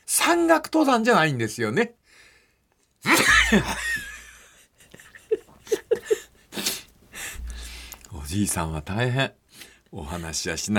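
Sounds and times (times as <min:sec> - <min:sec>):
speech: 0:00.3 - 0:02.0, 0:03.0 - 0:04.0, 0:08.3 - 0:10.7
breathy huffs: 0:06.1 - 0:08.1
short sniffs: 0:06.4 - 0:08.1
person sneezing: 0:06.5 - 0:07.5.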